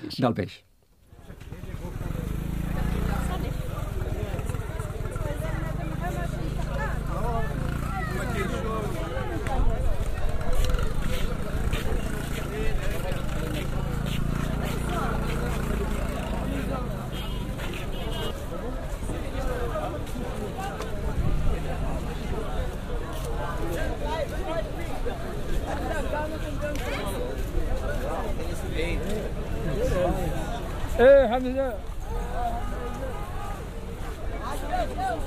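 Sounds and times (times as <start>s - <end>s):
speech: 0.1s - 0.7s, 31.0s - 31.9s
babble of many voices in a dense crowd: 1.0s - 35.2s
motorcycle engine rumbling past: 1.5s - 35.2s.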